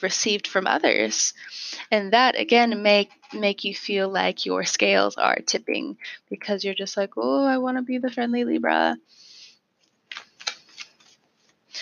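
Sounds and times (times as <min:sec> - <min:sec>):
speech: 0:00.0 - 0:09.2
tarot card being pulled out of the deck: 0:09.8 - 0:11.6.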